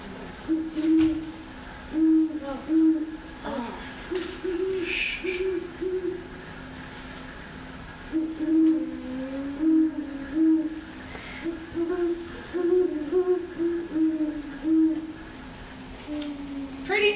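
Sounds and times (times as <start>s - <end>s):
faint steady hiss: 0.0s - 17.1s
recorded owl call played through speakers: 0.4s - 3.4s, 4.1s - 6.7s, 8.0s - 15.4s.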